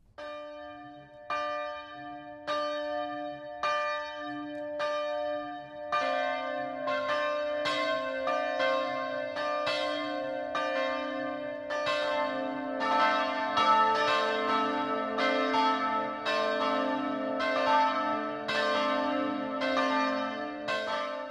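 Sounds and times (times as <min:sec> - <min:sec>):
church bells ringing a midday peal: 0:00.2 - 0:21.2.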